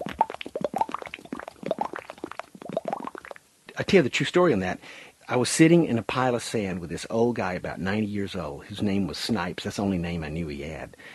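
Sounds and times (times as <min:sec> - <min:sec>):
voice imitating water drips and bubbles: 0:00.0 - 0:03.4
speech: 0:03.8 - 0:11.1.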